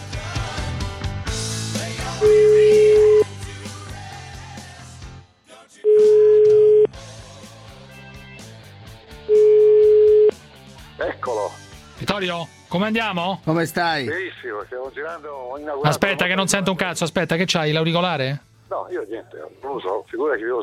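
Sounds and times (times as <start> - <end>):
loud music: 0.0 - 16.7
telephone ringback tone while placing a call: 2.2 - 3.3, 5.8 - 6.9, 9.3 - 10.4
speech: 12.2 - 20.6.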